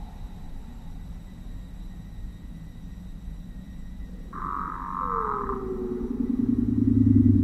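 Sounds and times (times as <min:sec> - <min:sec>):
loud hissing screech dropping in pitch: 0:04.3 - 0:07.3.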